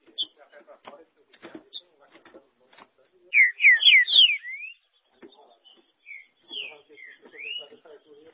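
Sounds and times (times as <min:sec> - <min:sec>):
green-winged saltator song of loud, rich whistled notes: 0:03.3 - 0:07.9.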